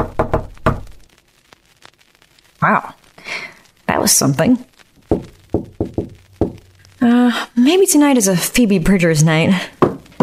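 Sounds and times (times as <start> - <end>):
knocking on wood: 0.0 - 0.9, 5.1 - 6.6, 9.8 - 10.2
speech: 2.6 - 3.0, 4.0 - 4.7, 7.0 - 9.8
faint taps: 5.1 - 6.7.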